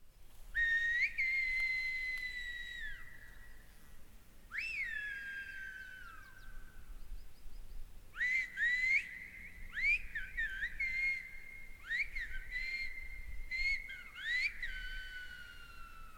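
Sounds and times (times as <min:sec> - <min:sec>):
whistled Spanish from two sisters on La Gomera: 0:00.6 - 0:03.4, 0:04.5 - 0:06.4, 0:08.2 - 0:16.1.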